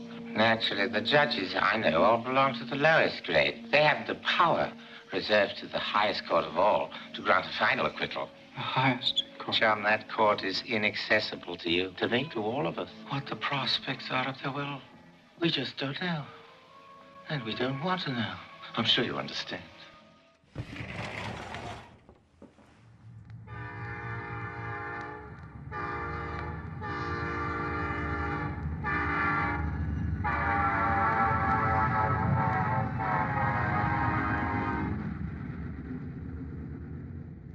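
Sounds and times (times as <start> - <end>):
speech: 0.4 - 16.4, 17.3 - 19.7
passing train rumbling: 20.6 - 37.5
train horn blasts: 23.4 - 35.1.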